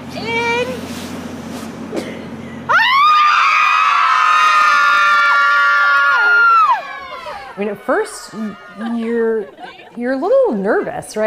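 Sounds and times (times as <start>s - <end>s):
group of women screaming together outdoors: 2.7s - 9.2s
laughter: 6.2s - 11.0s
speech: 7.6s - 11.2s.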